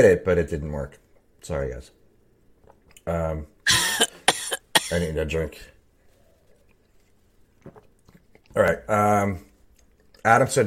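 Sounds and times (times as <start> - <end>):
speech: 0.0 - 2.0, 3.0 - 4.1, 4.9 - 5.7, 8.5 - 9.5, 10.2 - 10.6
person coughing into microphone: 3.7 - 5.2.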